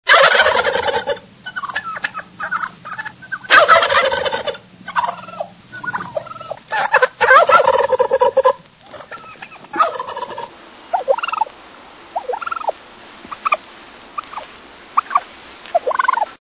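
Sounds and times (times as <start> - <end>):
wild turkey calls: 0.1 - 16.4.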